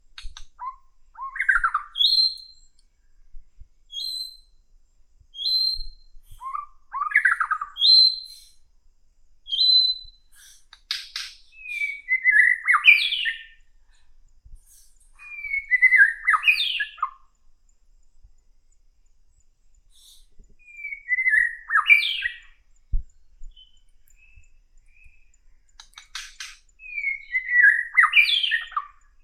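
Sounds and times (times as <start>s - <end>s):
jungle bird ambience: 0.4s - 2.6s, 6.4s - 8.6s, 9.5s - 13.7s, 14.8s - 17.3s, 19.9s - 22.7s, 23.5s - 29.2s.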